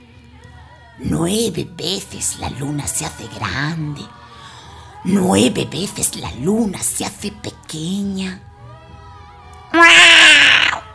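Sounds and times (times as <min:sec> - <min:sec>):
speech: 0:01.0 - 0:04.2, 0:05.0 - 0:08.5
newborn baby crying: 0:09.8 - 0:10.9.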